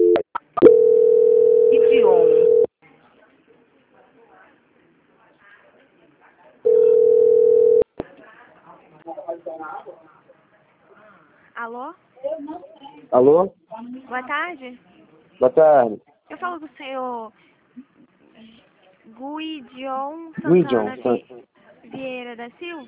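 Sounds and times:
telephone ringing tone while a call is transferred: 0.0 - 2.7, 6.7 - 7.9
speech: 13.1 - 17.5, 19.2 - 22.8.

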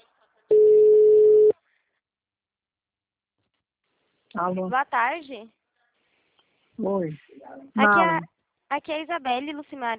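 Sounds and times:
telephone ringback tone on an outgoing call: 0.5 - 1.5
speech: 4.4 - 5.6, 6.8 - 9.9.

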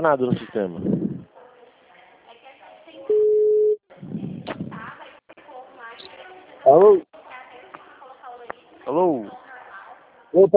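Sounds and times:
speech: 0.0 - 0.9, 6.7 - 7.1, 8.9 - 9.4, 10.4 - 10.5
telephone tone after a dropped phone call: 3.1 - 3.8.

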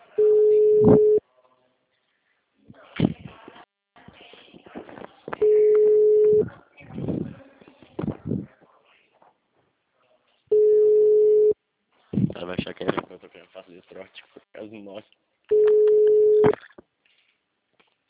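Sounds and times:
telephone ringback tones before going to voicemail: 0.2 - 1.2, 5.4 - 6.4, 10.5 - 11.6, 15.5 - 16.5.

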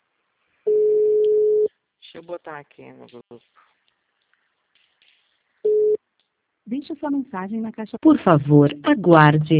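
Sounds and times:
telephone ringing tone on an unanswered call: 0.7 - 1.7, 5.7 - 6.0
speech: 2.2 - 3.7, 6.7 - 9.5.

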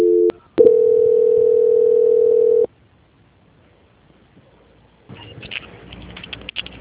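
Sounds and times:
telephone call-transfer tone: 0.0 - 2.7.

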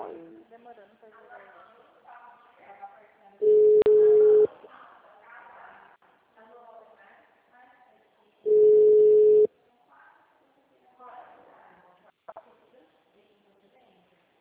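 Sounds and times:
people talking: 0.0 - 14.3
steady electronic telephone tones marking a dropped call: 3.4 - 4.5, 8.5 - 9.5.

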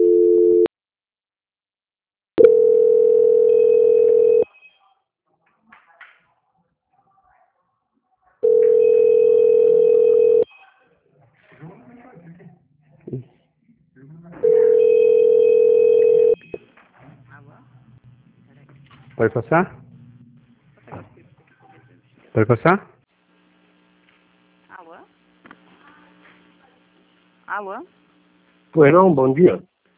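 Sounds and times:
telephone call transfer tones: 0.0 - 0.7, 2.4 - 4.5, 8.4 - 10.5, 14.4 - 16.6
speech: 19.2 - 19.8, 22.4 - 22.9, 28.8 - 29.7.

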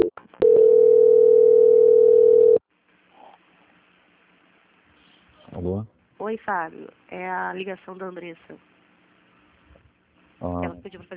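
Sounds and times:
steady telephone line beep during a call transfer: 0.0 - 2.6
speech: 6.3 - 8.8, 10.4 - 11.1.

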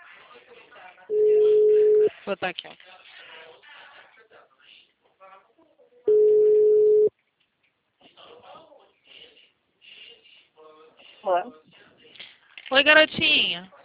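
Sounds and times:
ringing tone of an outgoing telephone call: 1.1 - 2.1, 6.1 - 7.1
speech: 2.3 - 3.0, 11.2 - 11.6, 12.7 - 13.8.

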